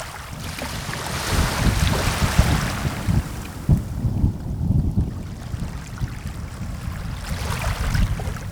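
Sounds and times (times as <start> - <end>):
thunder: 0.3 - 8.4.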